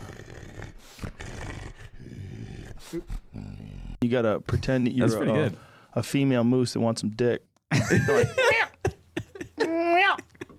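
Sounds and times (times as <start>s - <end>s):
person imitating a wolf's growl: 0.0s - 4.0s
speech: 2.8s - 8.5s
laughter: 7.7s - 10.5s.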